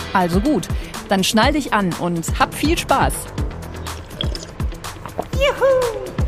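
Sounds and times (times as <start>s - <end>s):
speech: 0.1s - 3.4s, 5.4s - 6.1s
deep wet gulps of water being swallowed: 3.7s - 5.4s
faint liquid sloshing: 3.7s - 5.4s.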